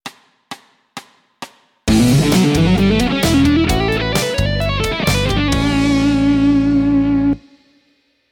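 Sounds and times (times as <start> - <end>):
fast guitar lick: 1.9 - 7.5.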